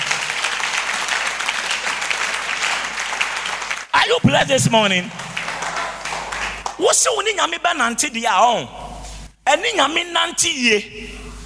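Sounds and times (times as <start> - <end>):
audience clapping during a religious sermon: 0.0 - 6.8
speech: 4.1 - 5.3, 6.8 - 8.9, 9.5 - 11.2.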